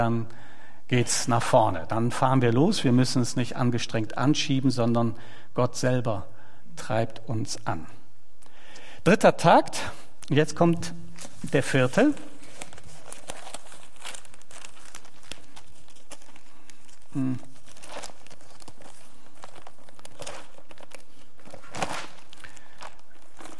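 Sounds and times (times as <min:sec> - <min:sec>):
speech: 0:00.0 - 0:08.0, 0:09.0 - 0:12.3, 0:17.2 - 0:17.5
paper crinkling and rustling while handled: 0:11.1 - 0:23.5.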